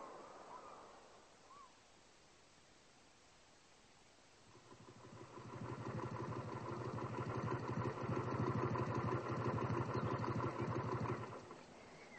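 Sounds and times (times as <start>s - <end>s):
motorcycle engine idling: 4.5s - 11.9s.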